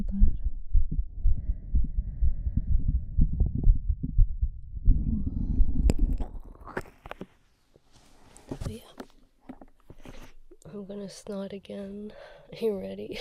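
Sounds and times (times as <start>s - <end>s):
heartbeat: 0.0s - 6.4s
rustling and scraping handling noises: 6.8s - 10.6s
speech: 10.9s - 13.1s.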